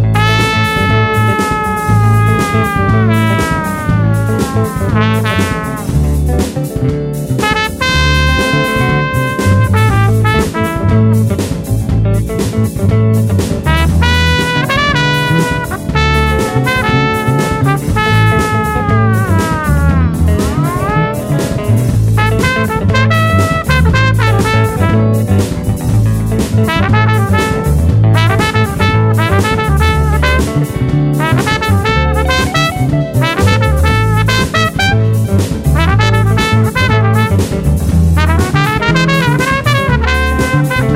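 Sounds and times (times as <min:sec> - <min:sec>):
solo trumpet blues in A: 0:00.1 - 0:12.5, 0:13.7 - 0:40.9.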